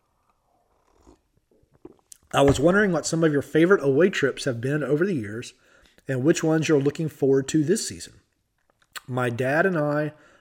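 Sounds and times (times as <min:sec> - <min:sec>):
soft mouth sounds: 0:00.1 - 0:02.3
slurping sip of coffee from a cup: 0:00.7 - 0:02.2
speech: 0:02.3 - 0:08.3, 0:09.1 - 0:10.3.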